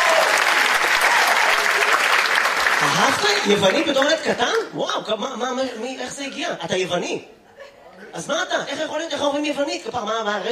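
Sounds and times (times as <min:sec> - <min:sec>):
audience applause cheering a man: 0:00.0 - 0:04.6
speech: 0:03.0 - 0:07.4, 0:08.1 - 0:10.5.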